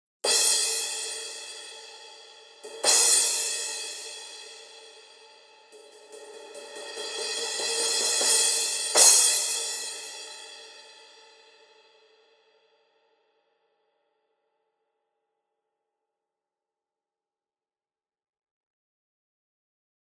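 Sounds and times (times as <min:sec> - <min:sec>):
16-inch crash cymbal: 0:00.3 - 0:12.2.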